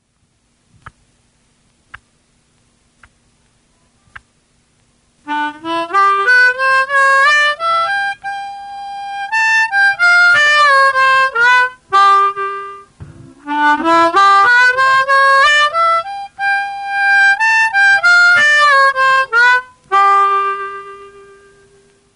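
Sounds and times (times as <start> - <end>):
garmoshka accordion playing a blues lick: 5.2 - 22.1.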